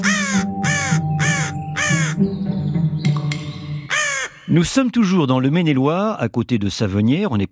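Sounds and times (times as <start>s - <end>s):
crow cawing: 0.0s - 2.2s, 3.9s - 4.5s
quieter bird chatter: 0.0s - 2.4s, 3.9s - 4.5s
speech: 4.5s - 7.5s.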